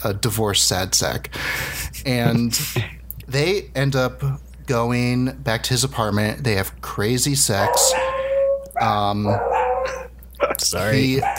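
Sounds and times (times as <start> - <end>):
speech: 0.0 - 8.2, 8.8 - 10.0, 10.6 - 11.3
dogs whining and howling with drawn-out tonal yowls: 7.6 - 10.1, 10.9 - 11.3.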